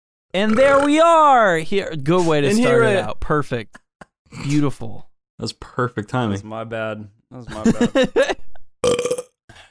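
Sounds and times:
speech: 0.3 - 9.0
laughter: 7.5 - 8.6
weak burp: 8.8 - 9.4.

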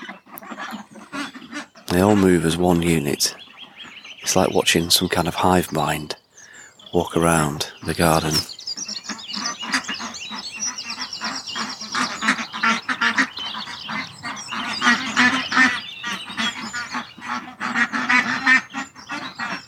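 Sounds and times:
flock of ducks quacking: 0.0 - 19.6
speech: 1.9 - 3.4, 4.2 - 6.2, 6.9 - 8.5.

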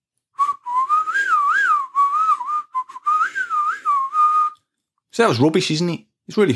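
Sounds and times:
person whistling a heavy metal guitar riff: 0.4 - 4.6
speech: 5.2 - 6.5.

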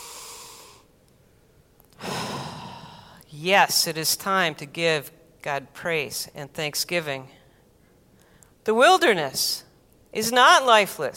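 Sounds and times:
person breathing in deeply: 0.0 - 0.9, 2.0 - 3.2
speech: 3.3 - 7.4, 8.7 - 11.1.

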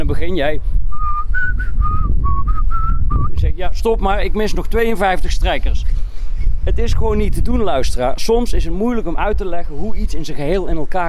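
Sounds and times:
speech: 0.1 - 0.9, 3.5 - 5.9, 6.6 - 11.0
person whistling a melody: 0.9 - 3.4.

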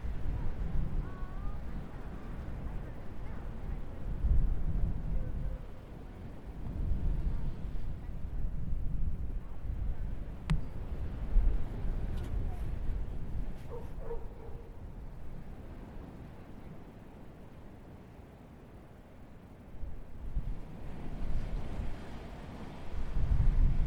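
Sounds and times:
faint voices at a beach: 0.0 - 10.8, 11.6 - 15.0
low steady rumble of wind and surf at a beach: 0.0 - 23.8.

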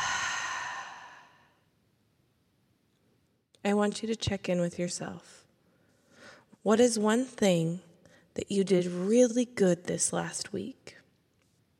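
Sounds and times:
long soft exhale from a guided breathing exercise: 0.0 - 1.5
speech: 3.6 - 5.4, 6.6 - 11.0.

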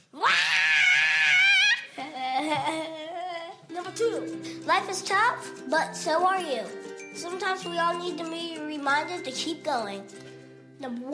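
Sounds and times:
person screaming: 0.1 - 2.0
speech: 4.0 - 10.2, 10.8 - 11.1.

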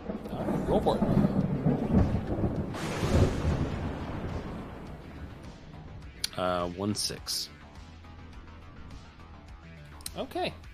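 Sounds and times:
thunder sound effect rumbling: 0.0 - 6.7
lightning arcing sound effect crackling: 0.0 - 7.1
speech: 0.7 - 1.2, 6.4 - 7.6, 10.2 - 10.7.

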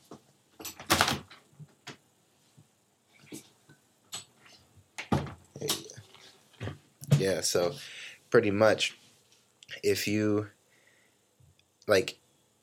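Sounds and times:
door opened and shut to let cat out: 0.6 - 1.4
speech: 7.2 - 9.0, 9.8 - 10.6, 11.9 - 12.2.

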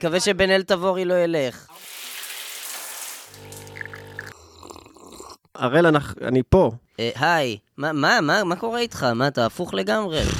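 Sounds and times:
speech: 0.0 - 1.9, 5.6 - 10.3
shower water spraying: 1.7 - 4.3
low buzzing hum: 3.3 - 4.3.

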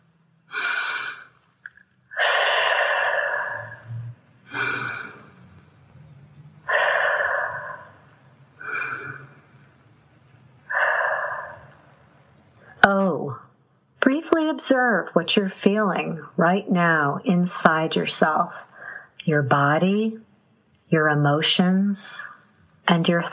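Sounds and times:
slow deep breaths drawn in and let out: 0.5 - 1.5, 2.1 - 5.8, 6.6 - 9.8, 10.5 - 12.8, 18.5 - 19.2
speech: 14.4 - 20.2, 20.9 - 22.3, 22.9 - 23.3.

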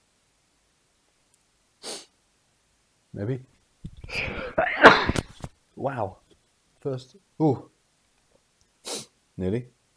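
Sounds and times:
person sneezing: 1.8 - 2.1, 4.1 - 5.4, 8.9 - 9.1
speech: 3.2 - 4.7, 5.8 - 6.2, 6.8 - 7.7, 9.4 - 9.8.

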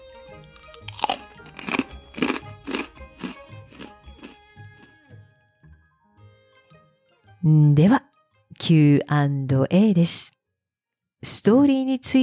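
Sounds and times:
crunching of snacks being chewed: 0.6 - 5.0
speech: 7.4 - 8.1, 8.7 - 10.4, 11.2 - 12.2.

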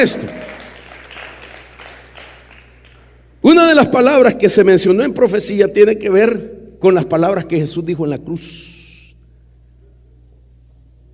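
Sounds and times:
speech: 0.0 - 0.5, 3.4 - 8.8
audience clapping: 0.0 - 3.2.

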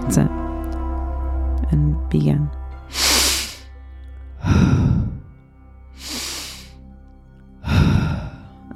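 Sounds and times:
speech: 0.1 - 0.5, 1.7 - 3.1
deep audible breaths in a breathwork rhythm: 2.9 - 7.0, 7.6 - 8.7.

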